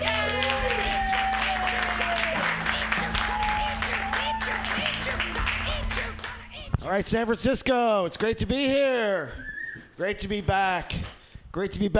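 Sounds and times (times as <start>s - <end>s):
comedy show audience applauding: 0.0s - 6.4s
speech: 6.9s - 11.0s, 11.6s - 11.9s.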